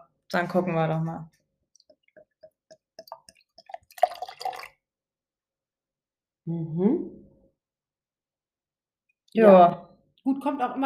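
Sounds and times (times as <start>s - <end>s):
speech: 0.3s - 1.4s, 6.4s - 7.2s, 9.3s - 10.8s
drips and clinks of beer into a glass: 1.8s - 4.8s
beer gurgling and splashing into a glass: 2.0s - 4.8s.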